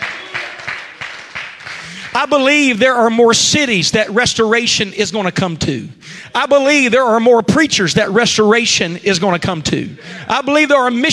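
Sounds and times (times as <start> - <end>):
audience voices shouting and cheering: 0.0 - 0.9
audience clapping: 0.0 - 2.5
speech: 1.9 - 11.1.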